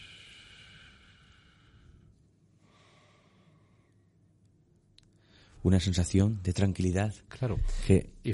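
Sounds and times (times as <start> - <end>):
slow exhale through pursed lips during a breathing exercise: 0.0 - 3.8
quiet breathing: 0.0 - 4.4, 5.1 - 5.6
speech: 5.6 - 8.3.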